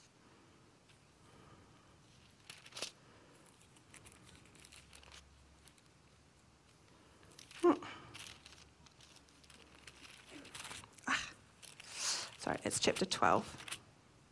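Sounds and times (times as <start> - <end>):
soft handling noises: 0.8 - 13.8
quiet paper rustling: 2.1 - 6.2, 7.2 - 13.8
speech: 12.5 - 13.7.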